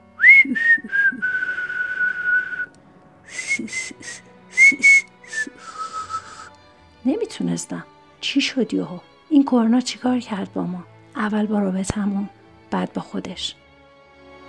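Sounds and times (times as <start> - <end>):
person whistling a melody: 0.1 - 2.7, 3.3 - 6.6
speech: 7.4 - 13.6.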